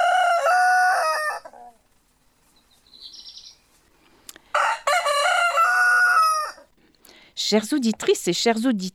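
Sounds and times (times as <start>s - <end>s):
rooster crowing: 0.0s - 1.8s, 4.5s - 6.7s
faint high chirp: 2.6s - 3.7s
speech: 7.5s - 8.9s.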